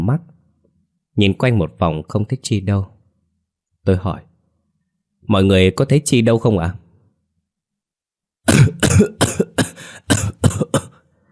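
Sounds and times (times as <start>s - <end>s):
speech: 0.1s - 0.3s, 1.2s - 3.0s, 3.8s - 4.3s, 5.3s - 6.8s, 8.5s - 9.1s
man coughing violently: 8.4s - 11.1s.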